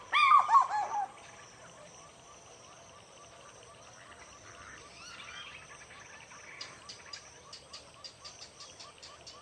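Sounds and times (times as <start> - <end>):
African fish eagle call at dawn over water: 0.1 - 1.2.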